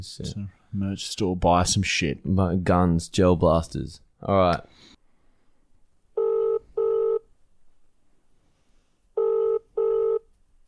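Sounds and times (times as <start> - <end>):
speech: 0.0 - 5.0
phone ringback tone on an outgoing call: 6.2 - 7.2, 9.2 - 10.3.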